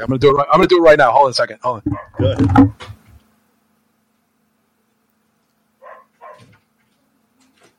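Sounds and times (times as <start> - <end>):
speech: 0.0 - 3.0
dog barking at a door: 1.9 - 2.2, 5.8 - 6.6.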